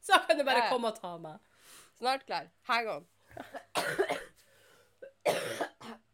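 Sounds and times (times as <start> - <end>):
speech: 0.3 - 4.3
person clearing throat: 3.4 - 4.3, 5.0 - 6.1
person coughing: 3.4 - 4.4, 5.0 - 6.1.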